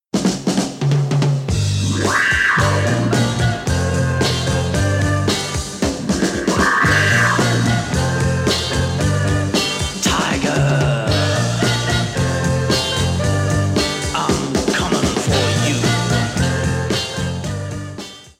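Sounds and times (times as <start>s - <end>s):
drums: 0.0s - 18.3s
organ: 1.6s - 18.3s.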